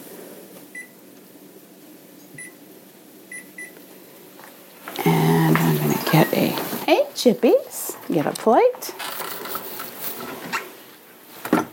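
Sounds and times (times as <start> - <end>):
steady low hum: 0.0 - 11.7
oven control panel beeping while being set to preheat: 2.4 - 2.7, 3.3 - 3.8, 5.0 - 7.0
speech: 6.1 - 9.0.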